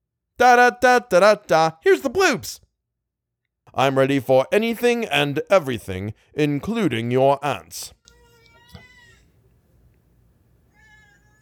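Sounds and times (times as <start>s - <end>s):
speech: 0.4s - 2.6s, 3.7s - 8.0s
cat meowing, whining for attention: 8.1s - 9.4s, 10.7s - 11.4s.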